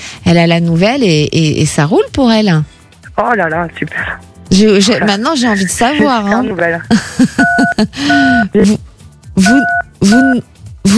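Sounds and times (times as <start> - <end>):
speech: 0.0 - 10.9
telephone keypad beeps: 9.4 - 10.3.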